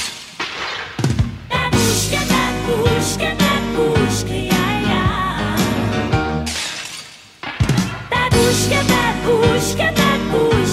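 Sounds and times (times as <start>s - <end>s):
tonal musical backing: 1.2s - 6.6s, 7.6s - 10.7s
sampled glass and dishes shattering, processed on a Fairlight: 6.5s - 8.1s.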